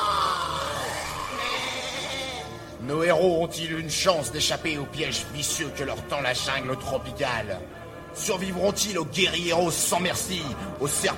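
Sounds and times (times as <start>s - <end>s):
wild animal cries in a tropical jungle among baobabs: 0.0s - 2.6s
speech: 2.8s - 11.1s.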